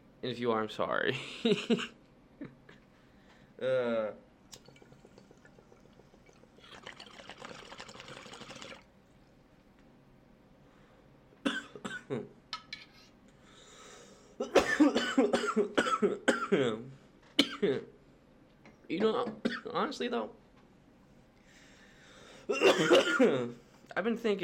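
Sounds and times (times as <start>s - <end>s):
steady hum: 0.0s - 24.0s
speech: 0.2s - 2.5s, 3.6s - 4.2s, 12.1s - 12.4s, 18.9s - 20.4s, 22.5s - 24.4s
person coughing harshly: 11.5s - 12.2s, 14.4s - 16.7s, 22.5s - 23.4s.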